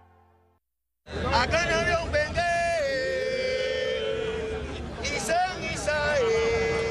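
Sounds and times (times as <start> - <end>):
murmur and chatter of a live crowd in Africa: 1.1 - 6.8
percussionist chanting ritual words in long held tones: 1.6 - 6.8.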